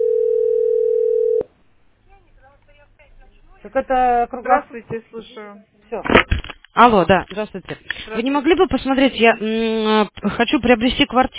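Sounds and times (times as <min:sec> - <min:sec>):
telephone dial tone while placing a call: 0:00.0 - 0:01.5
speech: 0:03.6 - 0:11.3.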